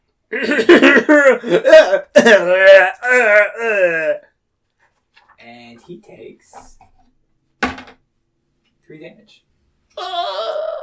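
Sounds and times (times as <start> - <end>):
person coughing harshly: 0.3 - 4.2
speech: 0.3 - 4.3, 5.4 - 6.9, 8.9 - 10.8.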